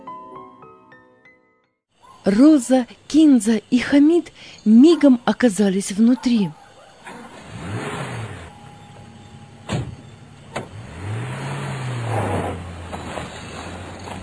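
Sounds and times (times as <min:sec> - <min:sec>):
speech: 0:02.2 - 0:06.6
car engine revving and roaring as it speeds across a market square: 0:07.0 - 0:14.2
sharp clunks of doors or mechanisms: 0:09.6 - 0:10.8.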